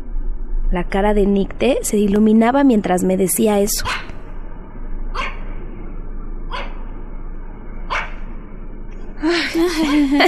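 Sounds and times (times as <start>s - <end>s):
low rumble: 0.0s - 10.2s
speech: 0.7s - 4.1s
dog barking: 3.8s - 4.1s, 5.2s - 5.4s, 6.5s - 6.8s, 7.9s - 8.2s
laughter: 9.2s - 10.2s.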